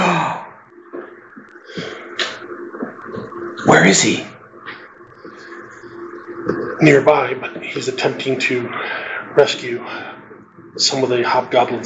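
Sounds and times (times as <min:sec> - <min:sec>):
quiet breathing: 0:01.0 - 0:02.6, 0:05.2 - 0:06.4, 0:08.6 - 0:10.6
speech: 0:03.0 - 0:04.3, 0:06.4 - 0:10.1, 0:10.8 - 0:11.8.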